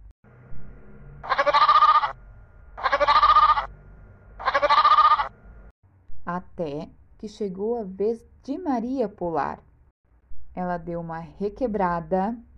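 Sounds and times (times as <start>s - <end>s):
sheep bleating: 1.2s - 2.2s, 2.8s - 3.7s, 4.4s - 5.3s
speech: 6.6s - 9.7s, 10.6s - 12.5s.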